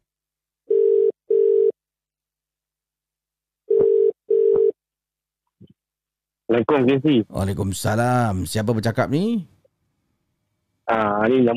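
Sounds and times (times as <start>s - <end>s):
telephone ringing tone of double electronic beeps while placing a call: 0.7s - 1.8s, 3.7s - 4.8s
speech: 6.5s - 9.5s, 10.9s - 11.5s.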